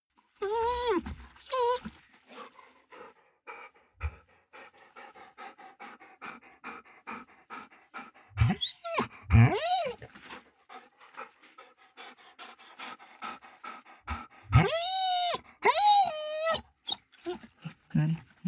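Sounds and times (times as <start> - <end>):
dog whining: 0.4 - 2.0, 8.4 - 10.1, 14.5 - 17.4
dog panting: 0.5 - 18.4.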